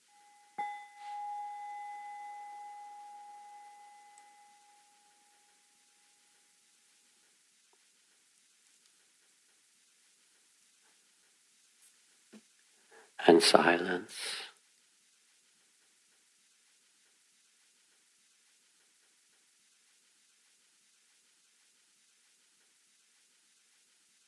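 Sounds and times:
single bell struck: 0.0s - 5.5s
soft crackling hiss: 0.0s - 24.2s
faint ticks: 2.7s - 13.2s, 14.6s - 24.2s
speech: 13.2s - 14.4s.

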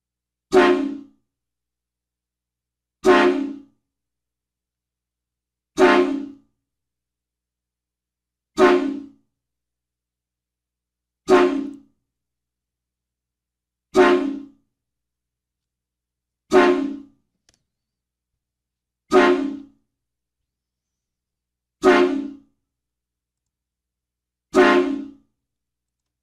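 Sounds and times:
train horn salute blasts: 0.5s - 1.1s, 3.0s - 3.7s, 5.8s - 6.4s, 8.6s - 9.2s, 11.3s - 11.9s, 14.0s - 14.6s, 16.5s - 17.1s, 19.1s - 19.7s, 21.8s - 22.5s, 24.5s - 25.2s.

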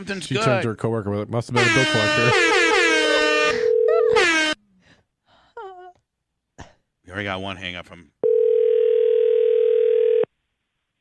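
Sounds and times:
speech: 0.0s - 2.6s, 7.2s - 8.2s
electronic telephone ringing tone on a phone line: 3.5s - 4.2s, 8.2s - 10.3s.

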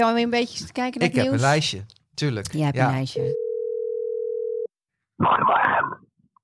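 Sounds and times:
speech: 0.0s - 3.4s
telephone ringback tone of an outgoing call: 3.2s - 4.7s.

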